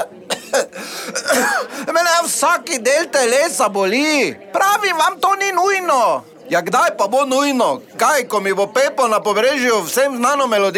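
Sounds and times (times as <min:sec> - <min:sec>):
throat clearing: 0:00.0 - 0:01.8
harsh raspy coughing: 0:00.0 - 0:02.0
speech: 0:00.0 - 0:10.7.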